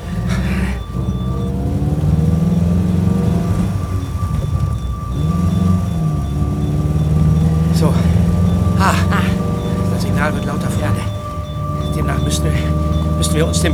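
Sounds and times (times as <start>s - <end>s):
laughter: 0.0s - 3.3s, 6.4s - 13.7s
car accelerating away and shifting into second gear: 0.0s - 13.7s.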